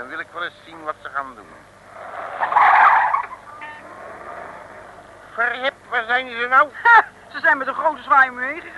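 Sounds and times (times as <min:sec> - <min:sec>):
speech: 0:00.0 - 0:02.1, 0:05.4 - 0:08.7
car tires skidding under hard braking: 0:01.8 - 0:05.4.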